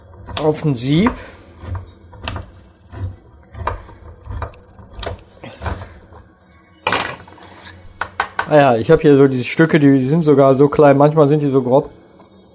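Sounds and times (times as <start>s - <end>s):
speech: 0.4s - 1.8s, 8.5s - 12.0s
can of pineapple being opened and poured: 6.9s - 8.6s.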